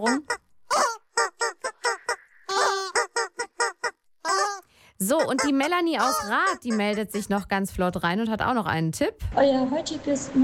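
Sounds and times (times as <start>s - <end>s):
speech: 0.0s - 0.4s, 5.1s - 10.4s
squeaky rubber chicken squeaking a song melody: 0.0s - 7.6s.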